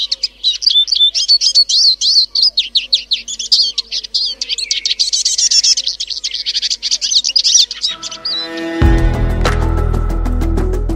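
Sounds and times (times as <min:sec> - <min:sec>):
Eurasian siskin singing a twittering song: 0:00.0 - 0:10.9
music: 0:07.9 - 0:10.9.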